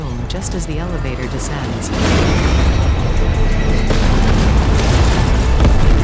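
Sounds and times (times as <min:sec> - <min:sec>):
speech: 0:00.3 - 0:04.4
bag rigged with dynamite exploding: 0:01.8 - 0:06.0.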